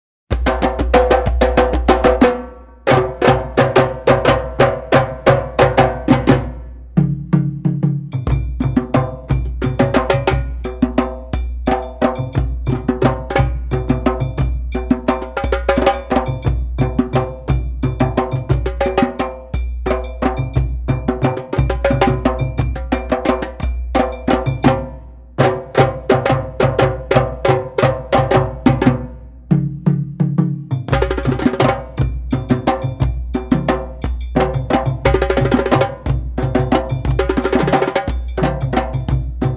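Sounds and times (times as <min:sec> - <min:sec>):
djembe drumming in traditional Malian bembe rhythm: 0:00.3 - 0:39.5.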